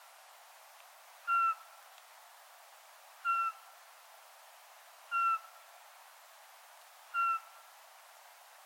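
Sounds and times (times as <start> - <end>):
Eurasian pygmy owl whistled hoots: 1.3 - 1.6, 3.2 - 3.6, 5.1 - 5.5, 7.1 - 7.5.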